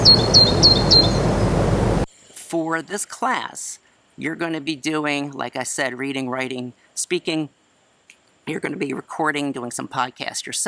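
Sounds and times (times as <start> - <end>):
quick high-pitched cricket chirps outdoors: 0.0 - 1.6
low steady hum: 0.0 - 2.1
speech: 2.7 - 7.6, 8.5 - 10.6.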